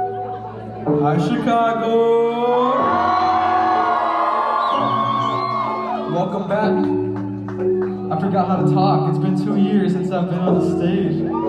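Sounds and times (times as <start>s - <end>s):
large concert crowd of fans screaming and cheering in Chicago: 0.0s - 8.0s, 11.0s - 11.4s
speech: 0.9s - 3.2s, 6.2s - 7.0s, 8.3s - 11.4s.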